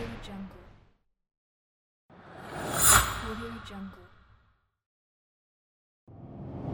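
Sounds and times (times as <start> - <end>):
whoosh: 2.3 - 4.2.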